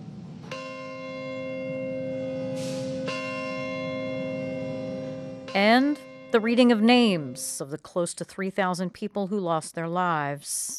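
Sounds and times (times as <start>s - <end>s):
large memorial bell tolling outdoors: 0.5s - 7.8s
speech: 5.5s - 10.7s.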